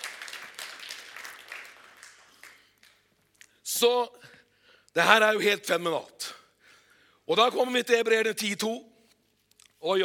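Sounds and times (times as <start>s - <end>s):
crowd applauding in a reverberant room: 0.0s - 3.0s
speech: 3.8s - 4.3s, 5.0s - 6.2s, 7.3s - 8.9s, 9.8s - 10.0s.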